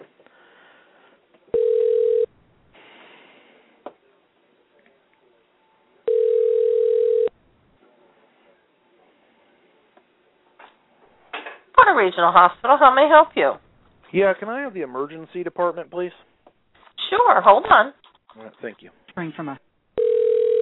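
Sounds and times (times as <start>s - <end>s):
faint low noise: 0.0s - 20.5s
telephone tones on a call to a hospital emergency department: 1.6s - 2.3s, 6.1s - 7.3s, 20.0s - 20.5s
speech: 12.0s - 16.3s, 17.1s - 19.7s.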